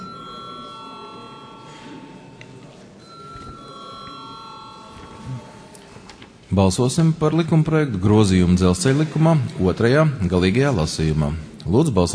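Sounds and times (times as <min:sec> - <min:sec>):
electric bell ringing in a parliament session to call a vote: 0:00.0 - 0:05.8
low murmur: 0:00.0 - 0:12.1
speech: 0:06.5 - 0:12.1.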